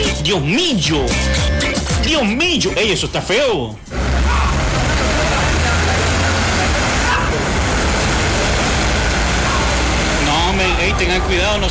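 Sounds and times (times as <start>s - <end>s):
constant wash of outdoor noise: 0.0s - 11.6s
speech: 0.2s - 4.0s, 11.0s - 11.6s
traffic with vehicles rolling past and low engine rumble: 3.8s - 11.6s.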